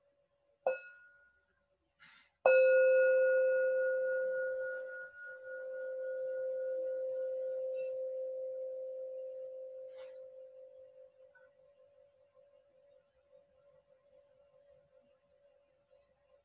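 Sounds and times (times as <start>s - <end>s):
bell being struck to mark the start of a reading: 2.5s - 11.0s.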